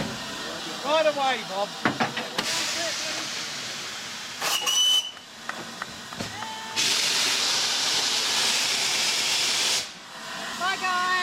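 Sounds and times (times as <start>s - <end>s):
steam locomotive hissing, stopped for water at Shalford in Surrey: 0.0s - 11.2s
speech: 0.9s - 2.0s
short high steam locomotive whistle: 4.4s - 5.2s.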